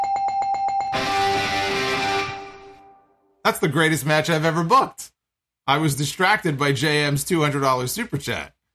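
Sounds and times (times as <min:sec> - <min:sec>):
bell ringing: 0:00.0 - 0:02.1
speech: 0:03.5 - 0:08.6.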